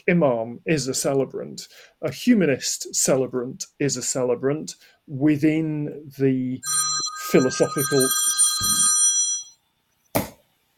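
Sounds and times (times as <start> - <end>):
speech: 0.0 - 8.9
telephone ringing: 6.6 - 9.6.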